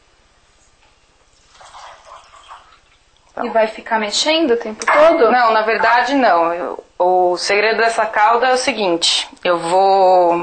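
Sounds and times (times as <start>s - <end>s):
water poured into a pan with sugar to make a syrup: 1.4s - 3.1s
speech: 3.4s - 10.4s.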